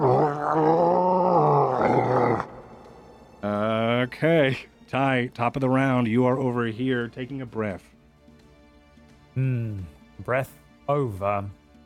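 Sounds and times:
video game creature wailing in pain: 0.0s - 3.7s
speech: 0.5s - 0.9s, 4.1s - 8.0s, 9.4s - 11.6s.

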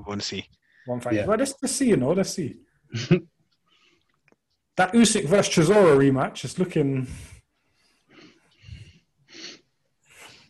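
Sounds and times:
speech: 0.0s - 3.3s, 4.8s - 7.4s
heavy excited breathing with rasping huffs and snorty inhales: 7.0s - 10.4s.

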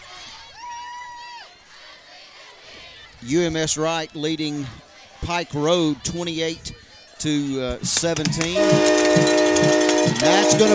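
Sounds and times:
speech: 3.2s - 10.7s
train horn blasts: 8.5s - 10.7s.

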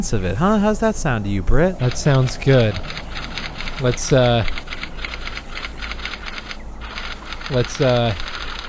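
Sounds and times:
speech: 0.0s - 4.6s, 7.5s - 8.3s
typing on a computer keyboard: 1.9s - 8.6s.

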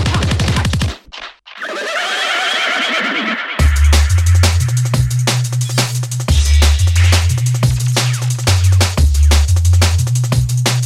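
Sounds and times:
horse whinnying: 1.6s - 3.8s
pounding bass-heavy music track with a steady beat: 3.6s - 10.8s.

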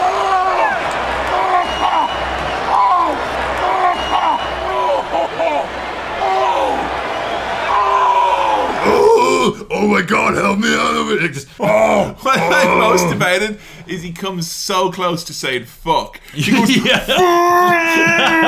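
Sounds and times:
steady roar of a large arena crowd: 0.0s - 13.4s, 16.5s - 18.4s
laughter: 1.1s - 6.0s, 16.2s - 18.4s
wrestler groaning and crying out in pain: 8.8s - 9.7s, 11.5s - 13.2s, 17.2s - 18.4s
speech: 10.5s - 18.4s.

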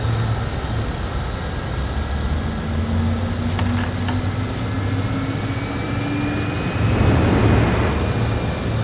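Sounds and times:
steady aircraft engine drone: 0.0s - 8.8s
aircraft left jet engine relighting and spooling up: 1.9s - 8.8s.

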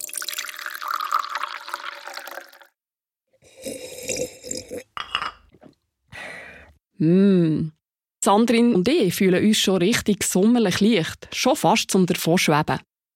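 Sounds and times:
herbal tea of green oats nettle and cardamom pouring into a cup: 0.0s - 2.8s
speech: 7.0s - 12.9s.

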